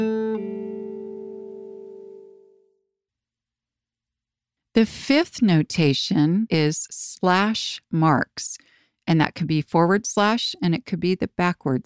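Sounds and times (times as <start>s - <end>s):
guitar pull-off on a single string: 0.0s - 2.6s
speech: 4.8s - 11.8s.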